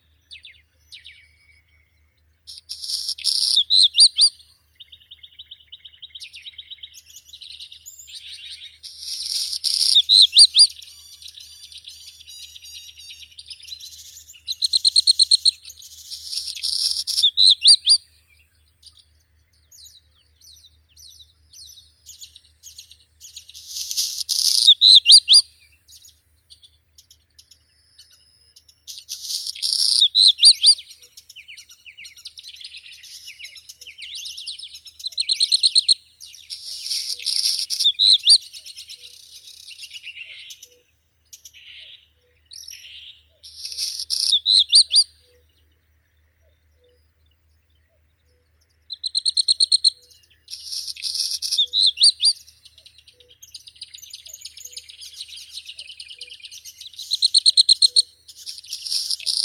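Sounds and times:
black redstart Phoenicurus ochruros: 0.0s - 59.4s.

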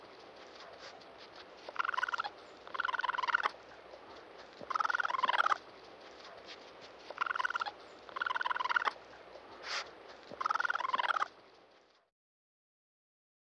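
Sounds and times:
raccoon chittering: 0.2s - 11.4s.

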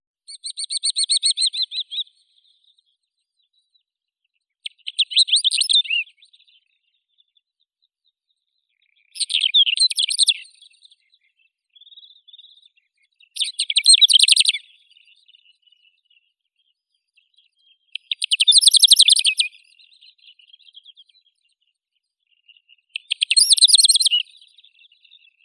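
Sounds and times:
Calandrella brachydactyla lark singing: 0.3s - 2.0s, 4.7s - 6.2s, 9.1s - 10.6s, 13.4s - 14.6s, 18.0s - 19.6s, 23.0s - 25.4s.

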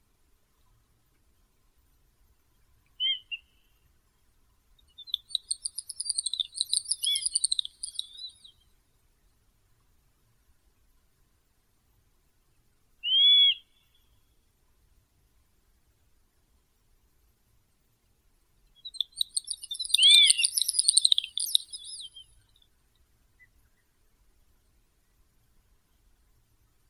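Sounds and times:
great snipe Gallinago media: 5.2s - 8.3s, 19.0s - 22.1s.

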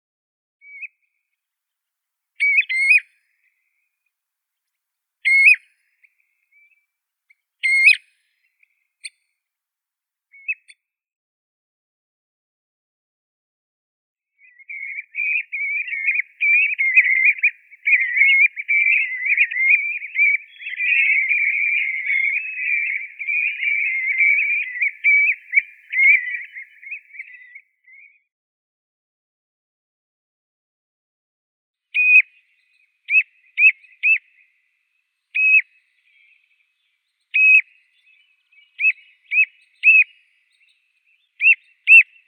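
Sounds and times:
common ringed plover Charadrius hiaticula calling: 5.3s - 5.6s, 7.6s - 8.0s, 14.6s - 27.6s, 32.0s - 32.4s, 33.1s - 34.5s, 35.4s - 36.6s, 37.3s - 42.2s.

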